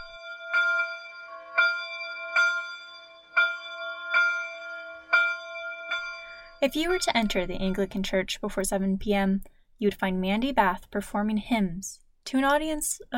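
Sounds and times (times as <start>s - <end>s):
church bells ringing after sunset: 0.0s - 7.8s
speech: 6.6s - 13.1s.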